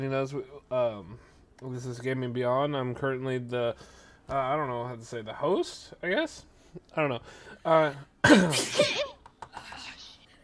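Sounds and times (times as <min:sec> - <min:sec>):
speech: 0:00.0 - 0:09.1
person sneezing: 0:08.2 - 0:09.2.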